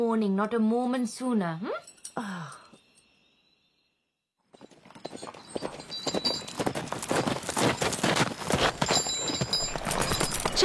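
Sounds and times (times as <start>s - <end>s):
speech: 0.0s - 2.3s
horse hooves clip-clopping at a walk: 4.5s - 10.6s.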